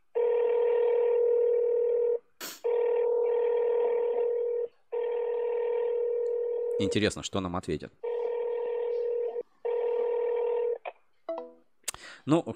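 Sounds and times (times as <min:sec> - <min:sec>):
electronic telephone dialing tones of a call connecting: 0:00.2 - 0:07.0, 0:08.0 - 0:10.9
speech: 0:06.8 - 0:08.1, 0:12.2 - 0:12.5.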